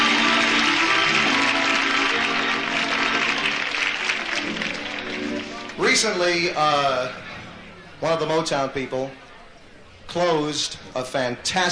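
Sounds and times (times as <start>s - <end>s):
sustained applause from a large audience: 0.0s - 6.2s
faint crowd noise: 0.0s - 11.7s
speech: 6.0s - 7.2s, 8.0s - 9.2s, 10.1s - 11.7s.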